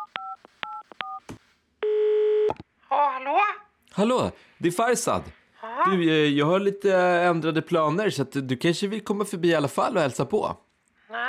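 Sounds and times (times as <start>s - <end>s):
sustained ringing tone on the telephone line: 1.8s - 2.5s
speech: 3.2s - 10.6s.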